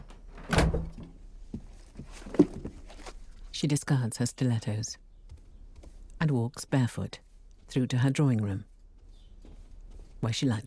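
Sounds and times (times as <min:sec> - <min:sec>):
door swinging shut with a solid thud: 0:00.0 - 0:01.1
speech: 0:03.6 - 0:05.0, 0:06.2 - 0:08.7, 0:10.2 - 0:10.6.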